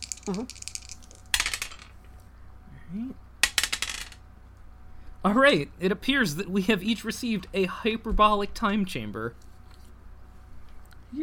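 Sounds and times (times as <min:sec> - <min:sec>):
dice rattling across a hard surface: 0:00.0 - 0:02.0, 0:03.4 - 0:04.2
speech: 0:00.3 - 0:00.7, 0:02.9 - 0:03.2, 0:05.2 - 0:09.5.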